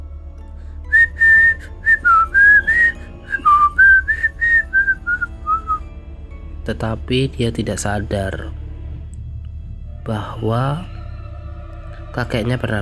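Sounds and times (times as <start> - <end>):
person whistling a melody in a corridor: 0.9 - 5.9
speech: 6.7 - 8.6, 10.1 - 11.0, 12.2 - 12.7.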